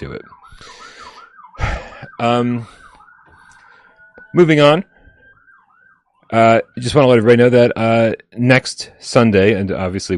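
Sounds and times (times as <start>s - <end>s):
speech: 0.0s - 0.8s, 2.2s - 2.8s, 4.3s - 4.9s, 6.3s - 10.1s
emergency siren wailing: 0.0s - 7.3s.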